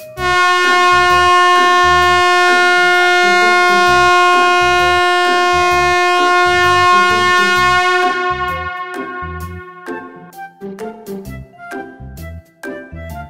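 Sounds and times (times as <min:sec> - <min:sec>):
car horns honking at a traffic light: 0:00.2 - 0:10.3.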